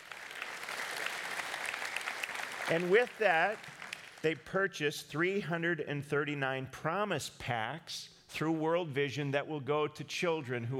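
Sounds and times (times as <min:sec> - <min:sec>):
audience applause from a large crowd: 0:00.0 - 0:04.4
speech: 0:02.7 - 0:10.7.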